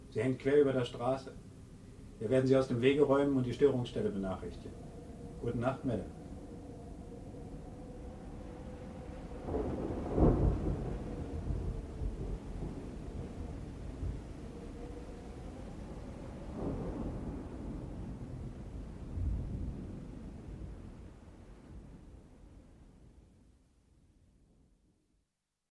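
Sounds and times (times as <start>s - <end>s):
rain: 0.0s - 24.0s
steady low roar of wind: 0.0s - 24.2s
speech: 0.1s - 1.5s, 2.2s - 6.2s
deep rolling thunderclaps: 2.6s - 23.2s.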